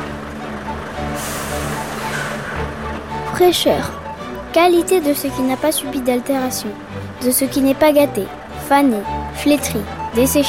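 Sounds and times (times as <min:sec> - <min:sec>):
fish delivery truck engine rumbling and idling: 0:00.0 - 0:10.4
truck air brakes hissing: 0:01.0 - 0:03.1
speech: 0:03.4 - 0:10.4.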